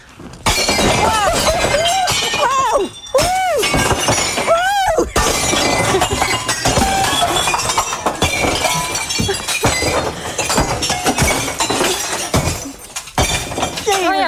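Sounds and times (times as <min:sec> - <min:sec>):
shattering and crashing glass debris: 0:00.0 - 0:14.2
glass champagne bottle smashing: 0:00.2 - 0:14.2
raised voices: 0:00.9 - 0:07.9.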